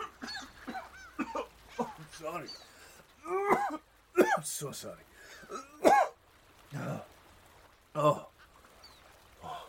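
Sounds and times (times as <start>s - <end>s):
person coughing harshly: 0.2s - 2.0s, 3.4s - 4.4s, 5.5s - 6.2s
speech: 2.2s - 5.7s, 8.0s - 8.2s.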